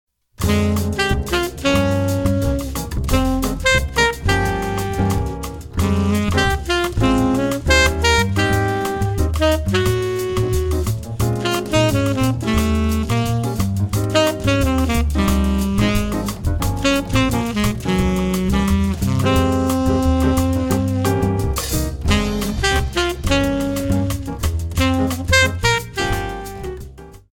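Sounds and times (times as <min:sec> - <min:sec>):
tenor saxophone playing etudes: 0:00.4 - 0:27.0.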